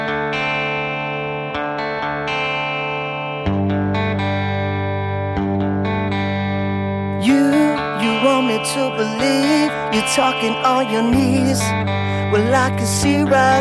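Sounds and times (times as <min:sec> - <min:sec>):
heavily distorted electric guitar chords in rock single intro: 0:00.0 - 0:13.5
speech: 0:08.7 - 0:13.5.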